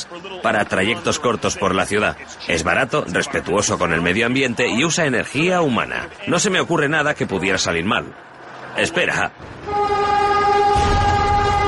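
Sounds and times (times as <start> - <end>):
train approaching on city rail tracks with low rumble: 0.0 - 11.6
speech: 0.1 - 10.1
train horn on city rail tracks: 9.6 - 11.6.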